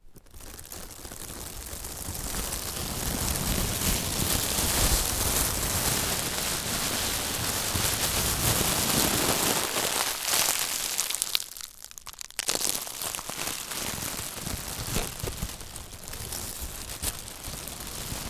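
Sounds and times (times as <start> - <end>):
plastic: 0.0 - 18.2.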